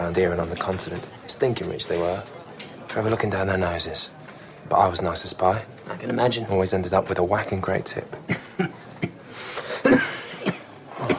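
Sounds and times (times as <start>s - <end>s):
speech: 0.1s - 8.7s
rough hacking coughs: 8.3s - 11.1s.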